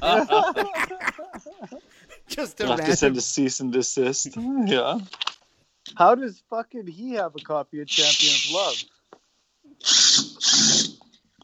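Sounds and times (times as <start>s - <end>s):
laughter: 0.0s - 3.3s
speech: 2.6s - 5.2s, 5.8s - 9.0s, 9.8s - 10.8s
power drill whirring: 9.8s - 11.0s.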